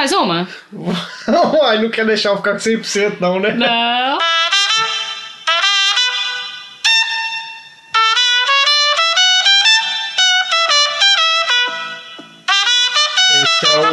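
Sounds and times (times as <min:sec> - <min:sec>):
speech: 0:00.0 - 0:04.9
laughter: 0:00.8 - 0:01.8, 0:03.3 - 0:04.0
trumpet playing a bright lively melody: 0:04.1 - 0:13.9.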